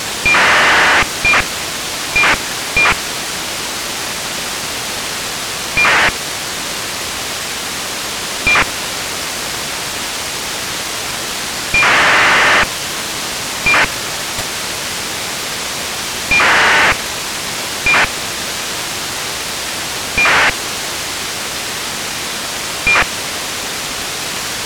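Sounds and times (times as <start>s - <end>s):
ACARS data signal: 0.2s - 1.5s, 2.2s - 3.0s, 5.8s - 6.1s, 8.5s - 8.7s, 11.8s - 12.7s, 13.7s - 13.9s, 16.3s - 17.0s, 17.9s - 18.1s, 20.2s - 20.5s, 22.9s - 23.1s.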